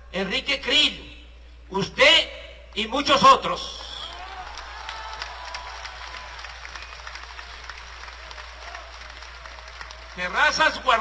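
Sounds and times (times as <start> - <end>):
speech: 0.1 - 1.1, 1.7 - 3.9, 10.2 - 10.9
crowd applauding: 3.8 - 10.9
audience shouting: 4.2 - 6.3.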